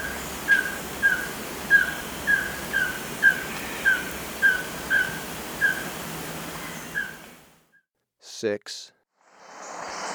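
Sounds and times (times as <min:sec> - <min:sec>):
White-streaked Antvireo calling short slightly rising notes in Ecuador: 0:00.0 - 0:07.5
speech: 0:08.4 - 0:09.0.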